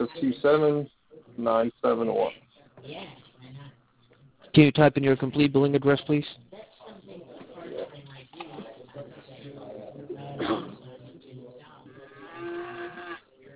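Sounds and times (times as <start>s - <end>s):
speech: 0.2s - 3.2s, 4.5s - 6.4s
cow mooing: 11.9s - 13.3s.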